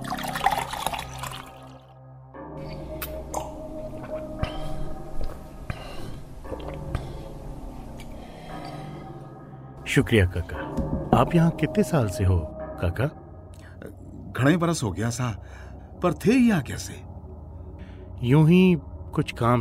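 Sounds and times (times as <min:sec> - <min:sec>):
water pouring into a vessel for drinking: 0:00.0 - 0:02.0
speech: 0:10.0 - 0:13.2, 0:14.4 - 0:17.1, 0:18.2 - 0:19.5.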